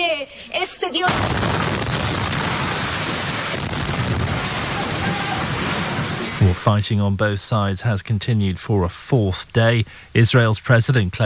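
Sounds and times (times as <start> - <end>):
speech: 0.2 - 1.5, 6.6 - 11.2
crackling debris: 1.0 - 6.7
sudden loud explosion: 1.1 - 6.6.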